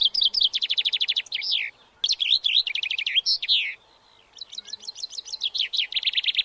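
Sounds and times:
chaffinch singing: 0.0s - 6.4s.

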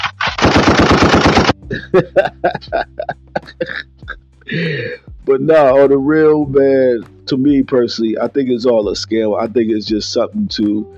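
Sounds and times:
automatic gunfire: 0.0s - 1.6s
laughter: 1.7s - 4.2s
speech: 2.0s - 3.9s, 4.5s - 10.9s.

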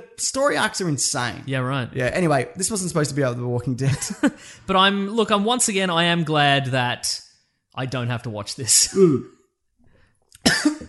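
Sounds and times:
speech: 0.2s - 7.2s, 7.8s - 9.4s
coughing: 10.4s - 10.8s.

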